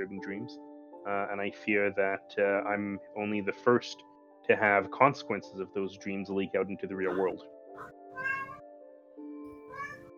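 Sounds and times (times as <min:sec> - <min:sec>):
speech: 0:00.0 - 0:08.3
cat meowing: 0:07.1 - 0:08.6, 0:09.5 - 0:10.1.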